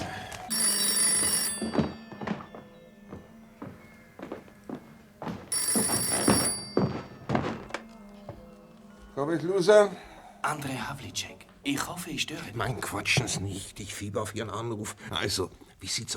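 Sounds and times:
telephone bell ringing: 0:00.5 - 0:08.4
speech: 0:09.2 - 0:16.1.

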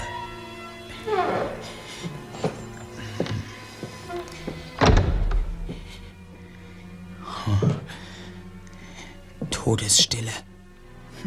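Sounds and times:
heavy door creaking open: 0:00.0 - 0:06.1
dull wooden thunks: 0:03.2 - 0:06.1
speech: 0:09.7 - 0:10.5.

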